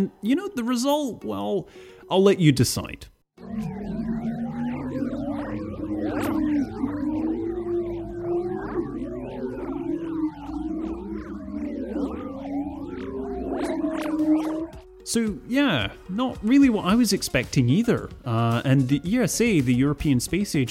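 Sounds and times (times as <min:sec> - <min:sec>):
speech: 0:00.0 - 0:03.9, 0:15.1 - 0:20.6
sonified solar electromagnetic waves as gliding overlapping tones: 0:03.4 - 0:17.1.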